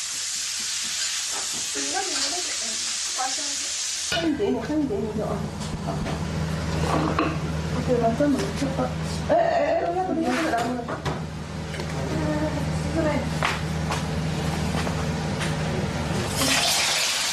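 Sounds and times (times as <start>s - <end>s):
food sizzling in a hot wok in a Chinese family kitchen: 0.0s - 7.8s, 16.2s - 17.3s
utensils stirring and clattering: 0.0s - 13.2s, 13.9s - 17.3s
people talking over the cooking: 1.8s - 5.5s, 7.8s - 11.0s, 11.9s - 13.3s.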